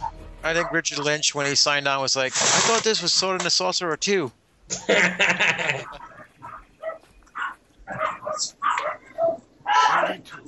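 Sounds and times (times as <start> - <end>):
dogs barking and whimpering: 0.0 - 1.0, 5.6 - 10.4
speech: 0.4 - 6.1
laughter: 4.7 - 6.2.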